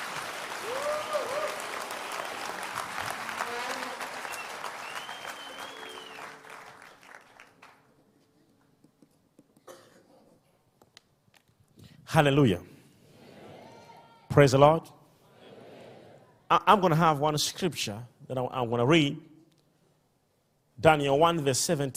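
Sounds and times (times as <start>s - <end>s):
audience clapping hands: 0.0s - 8.0s
speech: 12.1s - 12.8s, 14.4s - 15.0s, 16.5s - 19.3s, 20.8s - 21.9s.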